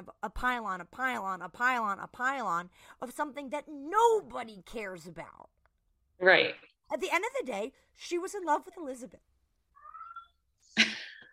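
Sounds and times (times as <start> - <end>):
speech: 0.2 - 5.5, 6.2 - 9.3
cat meowing: 9.8 - 10.4.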